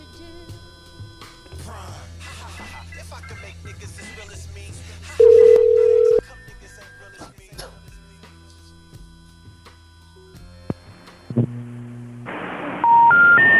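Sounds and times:
loud steady electronic telephone beep from a failed call: 5.2 - 6.2, 12.8 - 13.5.

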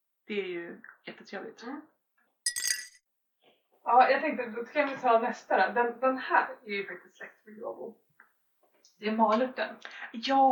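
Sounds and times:
speech: 0.3 - 2.0, 3.9 - 8.0, 9.0 - 10.5
glass jar clinking: 2.5 - 3.0.

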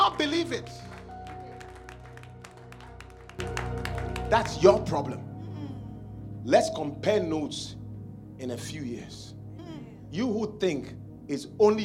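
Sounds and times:
audience clapping: 0.0 - 4.9
sustained low musical drone: 0.0 - 11.8
speech: 0.2 - 0.9, 3.4 - 5.3, 6.4 - 7.8, 8.4 - 9.4, 10.1 - 11.8.

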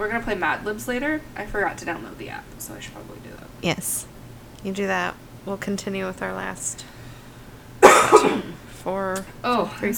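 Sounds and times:
speech: 0.0 - 7.0, 8.1 - 9.9
harsh cough: 7.8 - 8.7.

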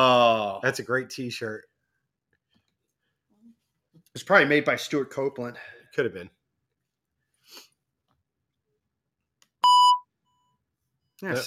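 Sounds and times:
speech: 0.0 - 1.7, 4.2 - 6.4, 11.2 - 11.4
soundboard beep imitating grocery store checkout scanner: 9.6 - 10.1.

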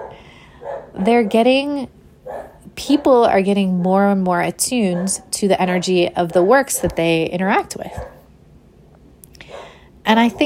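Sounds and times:
dogs barking: 0.0 - 1.6, 2.2 - 4.2, 4.8 - 8.3, 9.4 - 10.4
speech: 1.0 - 8.2, 10.1 - 10.4.

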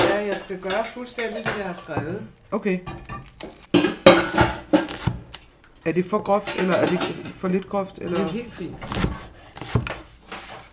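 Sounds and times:
speech: 0.3 - 3.7, 5.8 - 9.1
knife chopping garlic on a wooden cutting board: 2.9 - 5.4, 8.8 - 10.7.

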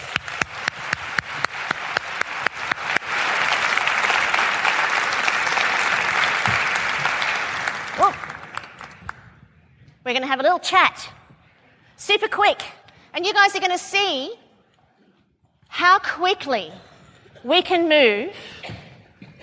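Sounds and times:
crowd applause filling the room: 0.0 - 9.3
sharp distinct claps: 0.0 - 9.4
speech: 10.1 - 11.2, 12.0 - 14.4, 15.8 - 18.6.

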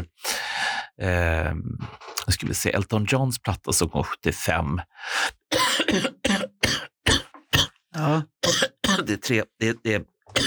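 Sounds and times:
speech: 1.0 - 6.5, 8.0 - 10.4
person coughing harshly from a lingering post-fever cough: 5.5 - 9.1.

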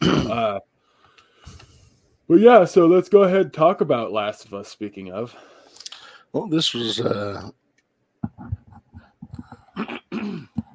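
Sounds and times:
person clearing throat: 0.0 - 0.6, 9.7 - 10.7
speech: 0.3 - 0.7, 2.3 - 5.6, 6.3 - 7.6.

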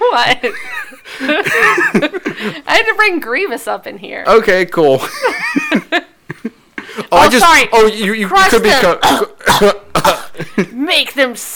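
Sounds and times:
laughter: 0.0 - 2.7, 5.0 - 7.1
speech: 0.1 - 6.0, 7.1 - 11.5
cough: 9.0 - 10.5.

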